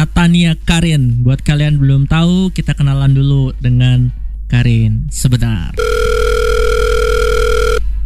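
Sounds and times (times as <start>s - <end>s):
speech: 0.2s - 6.2s
telephone line tone while a call connects: 5.8s - 7.9s.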